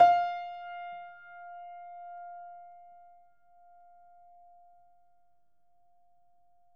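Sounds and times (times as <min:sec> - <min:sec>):
Steinway piano played fortissimo: 0:00.0 - 0:02.4.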